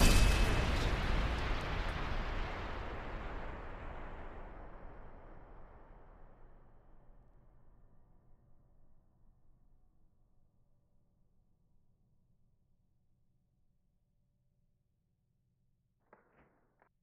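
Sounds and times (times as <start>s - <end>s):
metallic explosion: 0.0s - 6.3s.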